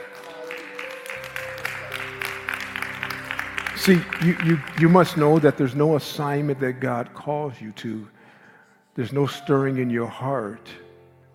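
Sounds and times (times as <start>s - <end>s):
audience applause: 0.0s - 6.0s
sustained musical tones and low droning chord: 0.0s - 11.3s
speech: 3.8s - 8.2s, 9.0s - 10.8s.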